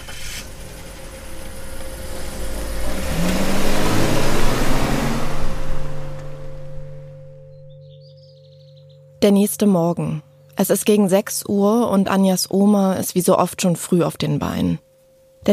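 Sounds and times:
car engine revving as the car pulls away: 0.0s - 7.7s
speech: 9.2s - 14.8s.

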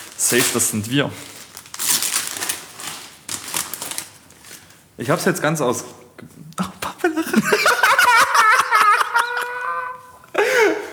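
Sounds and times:
plastic packaging crinkling as it is unwrapped from a cookbook: 0.0s - 5.0s
speech: 0.2s - 1.4s, 5.0s - 6.7s
laughter: 7.0s - 10.8s.

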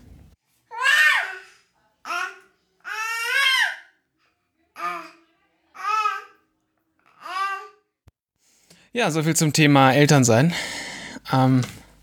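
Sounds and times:
unhappy baby babbling and whimpering: 0.7s - 3.9s, 4.8s - 6.4s, 7.0s - 7.9s
speech: 8.9s - 11.8s.

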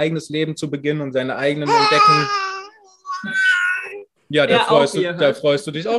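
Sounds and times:
speech: 0.0s - 2.5s, 4.3s - 5.9s
baby babbling and squealing: 1.7s - 4.0s.

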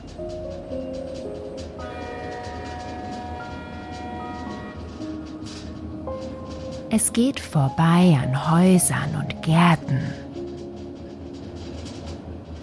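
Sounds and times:
faint rhythmic clatter of train on tracks: 0.0s - 12.6s
steam locomotive train rumbling along the tracks: 0.0s - 12.6s
steam locomotive whistle blasts: 1.8s - 4.9s
speech: 6.9s - 10.2s.

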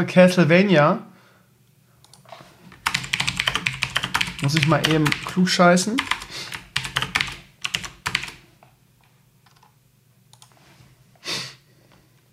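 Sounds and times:
speech: 0.0s - 1.1s, 4.4s - 6.4s
typing on a computer keyboard: 2.8s - 8.4s.

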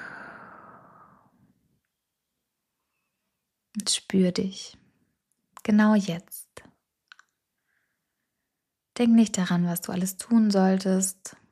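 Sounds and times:
slow deep exhale from a guided breathing exercise: 0.0s - 1.4s
speech: 3.8s - 4.8s, 5.6s - 6.7s, 9.0s - 11.4s.

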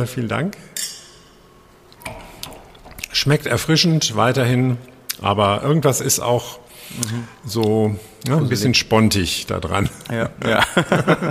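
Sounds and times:
speech: 0.0s - 0.8s, 3.2s - 11.2s
glasses clinking in a toast during a tasting of fermented drinks: 0.8s - 1.4s
laughter: 10.4s - 11.2s.

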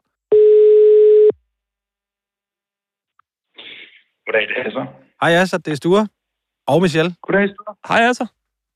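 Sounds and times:
ringing tone of an outgoing phone call: 0.3s - 1.3s
speech: 4.4s - 8.4s.

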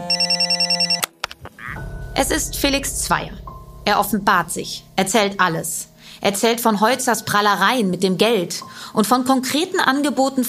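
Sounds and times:
telephone ringing with fast warbling electronic trill: 0.0s - 1.8s
speech: 2.2s - 10.4s.

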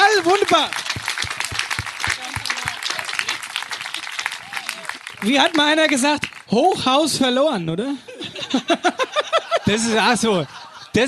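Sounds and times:
applause from a small group: 0.0s - 6.6s
speech: 0.3s - 0.8s, 5.2s - 11.0s
laughter: 2.2s - 5.2s, 7.9s - 11.0s.

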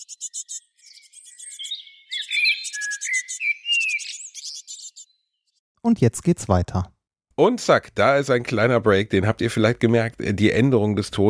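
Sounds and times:
speech: 0.0s - 0.5s, 5.8s - 11.2s
several birds chirping and singing: 0.0s - 5.6s.

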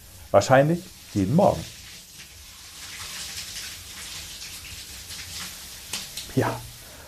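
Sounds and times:
shower water spraying and splashing: 0.0s - 7.0s
speech: 0.3s - 1.8s, 6.4s - 6.7s.

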